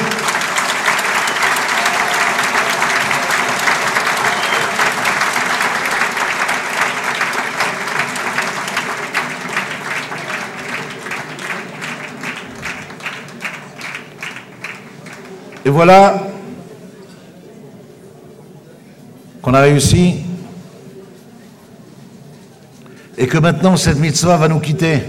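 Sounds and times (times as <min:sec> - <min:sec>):
large audience applauding: 0:00.0 - 0:15.8
speech: 0:15.7 - 0:16.3, 0:19.5 - 0:20.2, 0:23.2 - 0:25.0.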